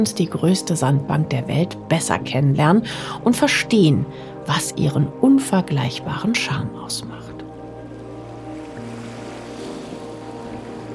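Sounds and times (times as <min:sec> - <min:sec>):
speech: 0:00.0 - 0:07.3
waves washing around a docked ferry in shallow tidal sea of a mudflat: 0:08.1 - 0:10.9.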